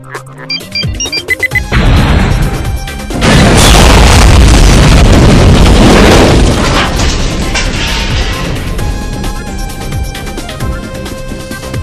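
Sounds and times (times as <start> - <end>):
beeps and tones: 0.0 - 1.7
remote-controlled bomb explosions blowing up a city: 1.6 - 9.9
rumbling debris: 1.7 - 11.4.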